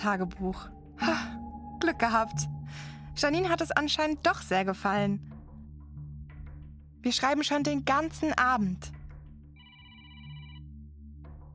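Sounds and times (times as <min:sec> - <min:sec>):
speech: 0:00.0 - 0:05.4, 0:07.0 - 0:09.0
telephone ringing with a bright trilling ring: 0:09.6 - 0:10.7.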